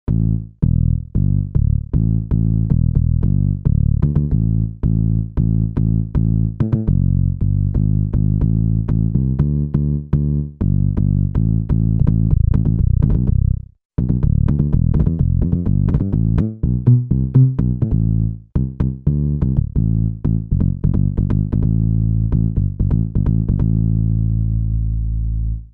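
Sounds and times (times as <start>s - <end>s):
house synth bass factory patches: 0.1s - 25.7s.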